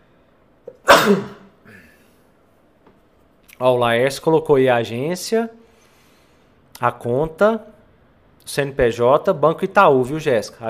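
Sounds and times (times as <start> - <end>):
speech: 0.7 - 1.4, 3.6 - 5.6, 6.8 - 7.7, 8.5 - 10.6
person sneezing: 0.7 - 2.1
brief inhale: 5.6 - 6.6.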